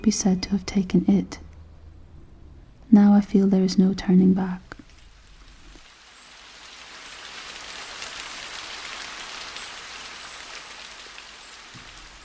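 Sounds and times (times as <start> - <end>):
speech: 0.0 - 1.4, 2.9 - 4.7
rain pattering on cement, stone and a plastic mat: 4.2 - 12.2.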